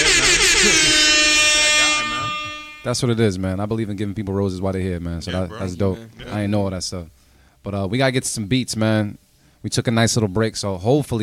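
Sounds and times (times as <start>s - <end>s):
air horn sound effect blaring: 0.0s - 3.0s
speech: 2.8s - 11.2s.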